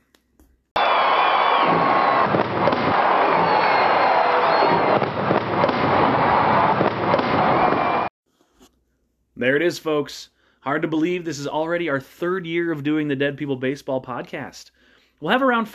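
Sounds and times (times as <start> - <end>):
faint crowd: 0.8 - 8.1
fireworks whistling streaks: 0.8 - 8.1
dense barrage of fireworks crackling and popping: 1.6 - 8.0
speech: 9.4 - 15.7.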